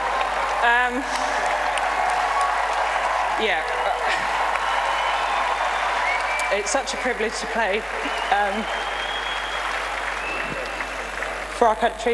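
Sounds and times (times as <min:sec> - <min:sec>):
large stadium crowd of England supporters clapping: 0:00.0 - 0:12.1
speech: 0:00.6 - 0:01.4, 0:03.4 - 0:04.2, 0:06.5 - 0:09.0, 0:11.6 - 0:12.1
whistles: 0:04.6 - 0:06.6, 0:07.9 - 0:11.4.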